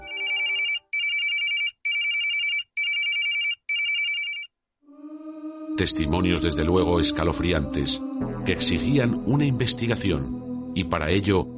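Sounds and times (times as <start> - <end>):
telephone bell ringing: 0.0 - 4.5
speech: 5.8 - 11.5.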